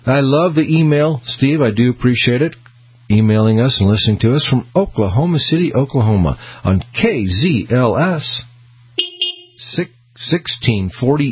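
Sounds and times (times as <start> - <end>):
speech: 0.0 - 8.5, 9.6 - 11.2
low constant hum: 0.0 - 11.2
car horn honking in a steady flat-toned blast: 9.0 - 9.7.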